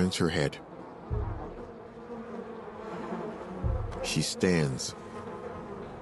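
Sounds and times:
speech: 0.0s - 0.7s, 4.0s - 5.0s
wasps swarming over a glass panel above a kitchen door: 0.0s - 5.9s.

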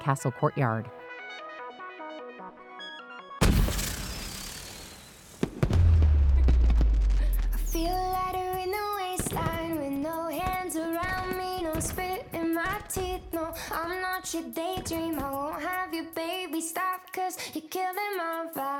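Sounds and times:
speech: 0.0s - 1.4s, 13.8s - 18.7s
fireworks exploding: 3.4s - 15.6s.

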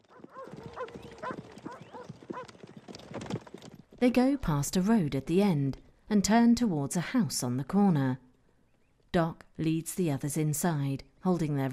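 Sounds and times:
several horses clip-clopping through an empty town high street: 0.0s - 4.6s
speech: 4.0s - 8.2s, 9.2s - 11.7s.

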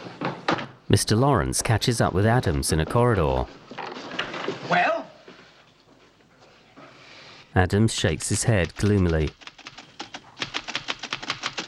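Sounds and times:
speech: 0.9s - 3.8s, 7.6s - 9.5s
typewriter being struck hard and fast: 8.2s - 11.6s.

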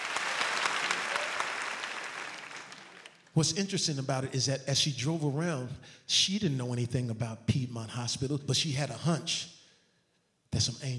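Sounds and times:
crowd applauding: 0.0s - 3.3s
speech: 3.4s - 9.6s, 10.5s - 10.9s.

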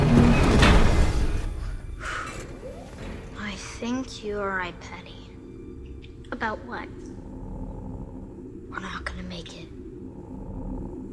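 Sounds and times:
elevator doors sliding shut: 0.0s - 3.6s
speech: 4.2s - 5.1s, 6.4s - 7.1s, 8.7s - 9.8s.

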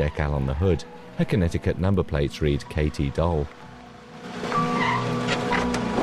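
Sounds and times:
speech: 0.0s - 3.6s
emergency medical technician's car engine and road rumble: 3.6s - 6.0s.

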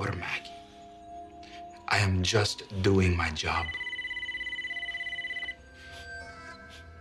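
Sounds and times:
speech: 2.0s - 3.8s
telephone ringing with electronic warble: 3.1s - 5.7s.

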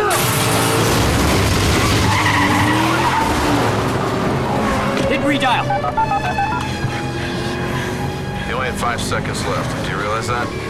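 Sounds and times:
car tires squealing and skidding after being shot out: 0.1s - 10.6s
car engine noise during a chase: 0.2s - 10.6s
speech: 5.3s - 6.0s, 8.8s - 10.6s.

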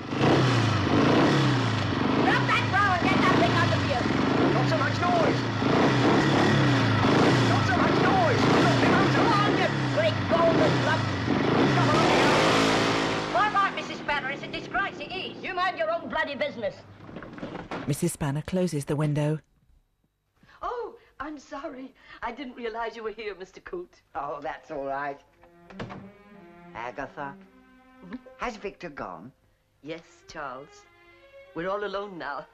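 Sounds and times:
motorbike engine revving at the curb outside a house: 0.0s - 15.6s
speech: 18.2s - 19.5s, 21.4s - 30.9s, 31.6s - 32.5s.

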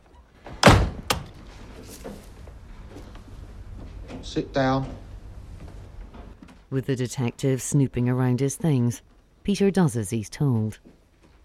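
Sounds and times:
front door swinging shut: 0.5s - 1.5s
speech: 4.3s - 5.0s, 6.7s - 11.0s.

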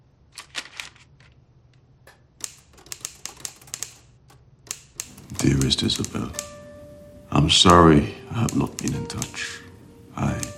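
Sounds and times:
typewriter keys clacking as someone types on paper at an office desk: 0.4s - 1.1s, 2.4s - 4.1s, 4.7s - 6.6s, 7.5s - 10.5s
speech: 5.6s - 6.5s, 7.4s - 9.6s.

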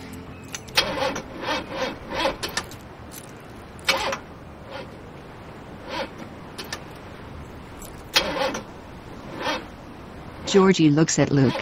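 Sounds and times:
truck engine cranking and failing to start: 0.0s - 5.0s, 5.8s - 7.1s, 7.7s - 9.8s
speech: 10.5s - 11.5s.

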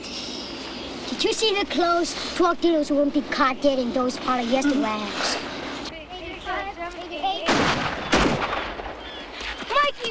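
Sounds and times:
speech: 1.2s - 5.5s
gunshots: 7.5s - 9.1s.

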